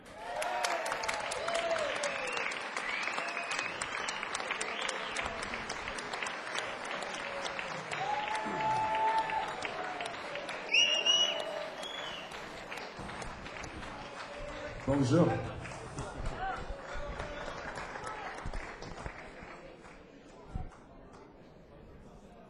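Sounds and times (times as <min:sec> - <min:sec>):
audience cheers and whistles: 0:00.0 - 0:14.5
audience clapping: 0:00.0 - 0:21.3
speech: 0:15.0 - 0:15.5.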